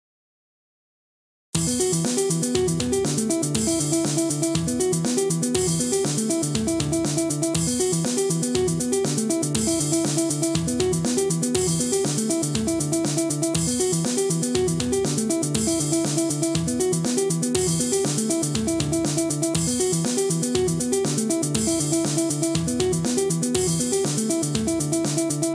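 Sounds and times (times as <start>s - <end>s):
polyrhythmic rhythm pattern: 1.6s - 25.5s.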